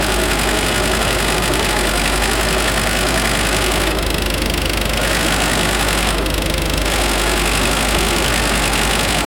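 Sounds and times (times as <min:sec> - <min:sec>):
scooter wheel engine: 0:00.0 - 0:09.3.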